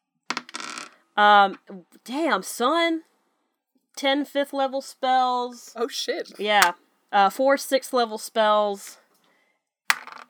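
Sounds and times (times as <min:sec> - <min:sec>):
dice tumbling across a hard tabletop: 0:00.3 - 0:01.0, 0:09.9 - 0:10.2
speech: 0:01.2 - 0:03.1, 0:04.0 - 0:09.0.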